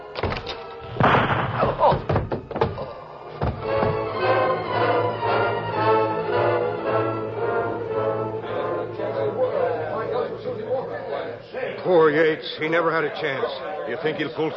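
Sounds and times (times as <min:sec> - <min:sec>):
door of a small house opening with solid thunks: 0:00.2 - 0:04.2
murmur of several voices talking: 0:02.8 - 0:14.5
speech: 0:12.4 - 0:14.5.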